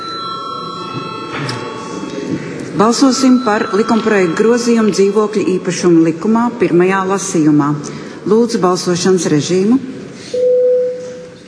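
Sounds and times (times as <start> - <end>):
bell ringing continuously in a parliament chamber to call a vote: 0.0 - 7.8
speech: 2.3 - 9.9.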